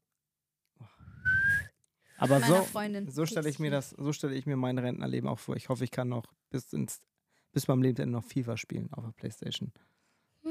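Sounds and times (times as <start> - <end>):
person whistling a rising note: 1.0 - 2.7
speech: 2.2 - 10.0.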